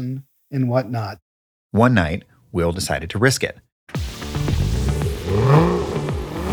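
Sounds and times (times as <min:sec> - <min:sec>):
speech: 0:00.0 - 0:04.0
Ferrari sports car engine revving hard: 0:04.0 - 0:06.5.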